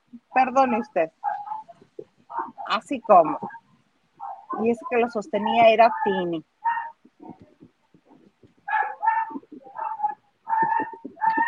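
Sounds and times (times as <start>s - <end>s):
speech: 0.4s - 1.3s, 2.7s - 3.6s, 4.5s - 6.5s
dog barking and yelping: 1.2s - 2.7s, 4.2s - 4.7s, 5.8s - 7.0s, 8.6s - 11.4s.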